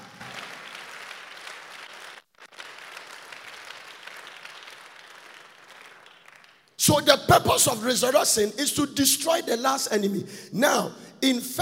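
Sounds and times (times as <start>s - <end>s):
large crowd clapping during a sermon: 0.0s - 7.0s
speech: 6.8s - 11.6s.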